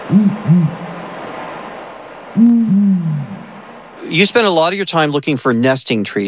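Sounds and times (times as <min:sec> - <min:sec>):
male and female pair of the world's biggest owls duetting: 0:00.0 - 0:00.9, 0:02.4 - 0:03.5
speech: 0:00.1 - 0:00.9, 0:02.4 - 0:03.3, 0:04.0 - 0:06.2.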